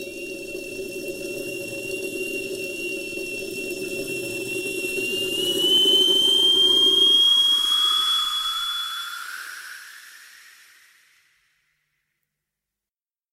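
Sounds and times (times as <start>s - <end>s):
flying airplane jet engine roar with high whine: 0.0s - 11.1s.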